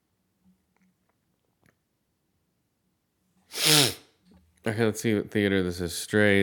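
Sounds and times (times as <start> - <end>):
person sneezing: 3.5 - 4.1
speech: 4.6 - 6.4.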